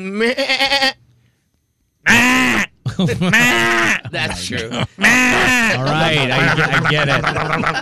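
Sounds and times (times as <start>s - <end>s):
person imitating a goat bleat in a goat impression contest: 0.0s - 1.0s, 3.3s - 5.8s
speech: 0.0s - 1.0s, 3.0s - 7.8s
laughter: 2.9s - 7.8s.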